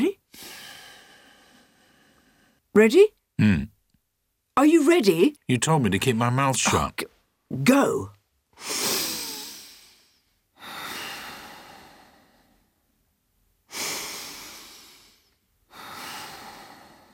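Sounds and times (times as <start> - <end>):
slow deep breathing: 0.3 - 2.7, 8.6 - 12.9, 13.7 - 17.1
speech: 2.8 - 3.8, 4.6 - 8.9.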